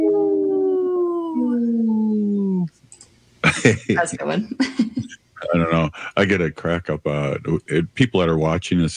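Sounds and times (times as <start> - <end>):
wolf howling: 0.0 - 2.7
faint noise: 0.0 - 8.9
speech: 3.6 - 8.9.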